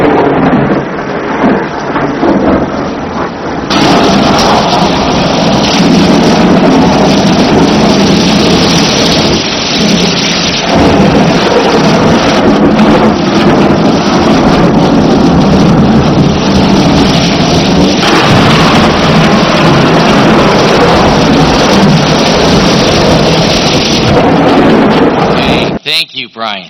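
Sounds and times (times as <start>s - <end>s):
thunder rumbling: 0.0s - 25.9s.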